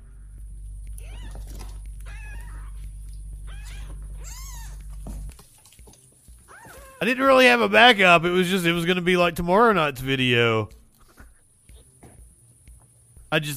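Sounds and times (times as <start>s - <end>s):
steady low hum: 0.0s - 13.5s
cat meowing: 1.0s - 2.9s, 3.5s - 4.8s, 6.5s - 7.0s
speech: 7.0s - 10.8s, 13.3s - 13.5s.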